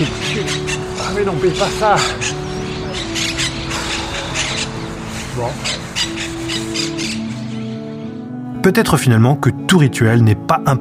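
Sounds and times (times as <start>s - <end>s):
pigeon among birds being fed: 0.0s - 7.6s
birds squawking harshly: 0.0s - 8.4s
speech: 1.2s - 2.4s, 5.4s - 5.8s, 8.6s - 10.7s.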